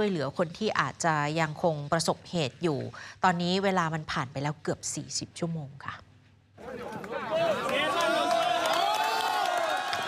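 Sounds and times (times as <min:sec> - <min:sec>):
speech: 0:00.0 - 0:06.0
crowd cheering at rescue from earthquake rubble in Colombia: 0:06.6 - 0:10.0
overlapping shouts and whoops: 0:06.7 - 0:10.0.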